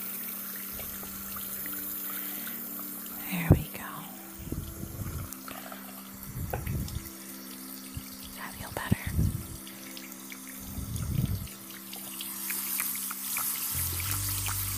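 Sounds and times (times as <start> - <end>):
tap water running while washing a face mask off a face: 0.0 - 14.7
person speaking in a soft whispering voice: 3.2 - 4.8, 8.4 - 9.4.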